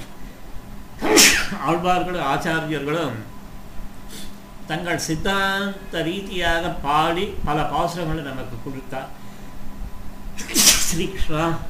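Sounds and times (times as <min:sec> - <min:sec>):
sneeze: 0:01.0 - 0:01.6, 0:10.4 - 0:11.0
speech: 0:01.5 - 0:03.3, 0:04.1 - 0:09.2, 0:10.4 - 0:11.6.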